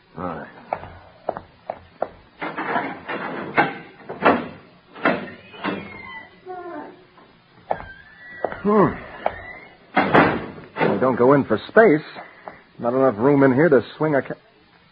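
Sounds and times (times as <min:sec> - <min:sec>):
door opening and closing with wooden clunks and thumps: 0:02.0 - 0:11.2
speech: 0:08.6 - 0:09.0, 0:11.0 - 0:14.4.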